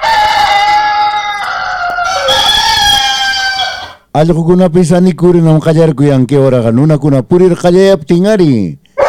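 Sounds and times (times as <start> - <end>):
rooster crowing: 0.0 - 4.1
speech: 4.2 - 8.9.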